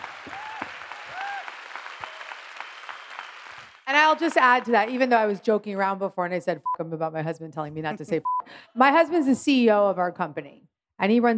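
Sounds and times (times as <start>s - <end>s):
people whooping: 0.0s - 3.4s
room full of people clapping: 0.0s - 5.1s
speech: 3.9s - 11.3s.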